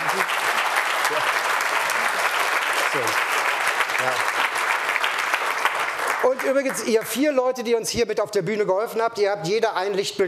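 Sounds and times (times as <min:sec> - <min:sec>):
audience applause at a presentation: 0:00.0 - 0:07.2
speech: 0:03.0 - 0:03.2, 0:06.4 - 0:10.2.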